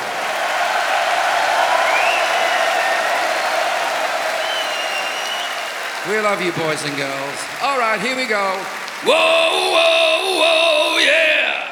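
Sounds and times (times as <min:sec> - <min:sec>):
concert crowd applauding and cheering: 0:00.0 - 0:11.6
high whistles from a concert crowd: 0:01.7 - 0:03.5, 0:04.3 - 0:06.1
speech: 0:06.1 - 0:11.2.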